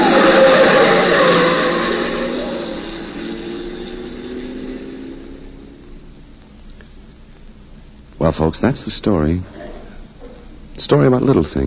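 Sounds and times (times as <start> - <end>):
car engine roaring as the vehicle moves off: 0.0 - 7.1
speech: 8.4 - 9.6, 10.8 - 11.6.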